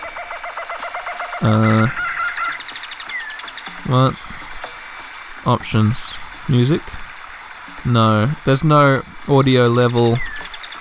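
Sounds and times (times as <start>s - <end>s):
loud busy bird calls: 0.0s - 10.7s
speech: 1.4s - 2.0s, 3.9s - 4.3s, 5.4s - 7.0s, 7.8s - 10.3s.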